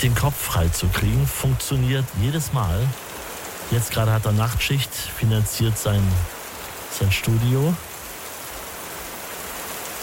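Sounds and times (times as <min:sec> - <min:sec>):
speech: 0:00.0 - 0:03.1, 0:03.7 - 0:07.9
steady dense rain: 0:00.0 - 0:10.0.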